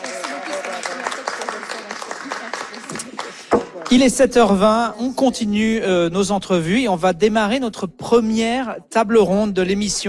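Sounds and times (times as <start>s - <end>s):
live audience applauding with many hands clapping: 0.0s - 4.1s
voices mixed into the crowd noise: 0.0s - 4.1s
speech: 3.9s - 10.0s.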